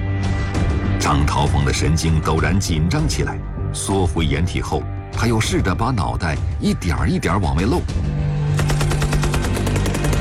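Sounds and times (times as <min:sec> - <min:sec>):
speech: 0:01.0 - 0:08.2
machine-gun fire from a trench line in wartime: 0:08.6 - 0:10.1.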